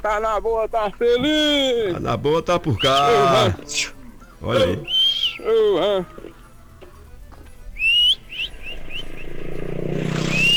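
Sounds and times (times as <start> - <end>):
speech: 0.0 - 6.3
laughter: 0.0 - 10.5
motorcycle engine rumbling passing on a farm: 0.0 - 10.5
sharp whistles: 0.0 - 10.5
voice-like sounds: 1.1 - 6.4.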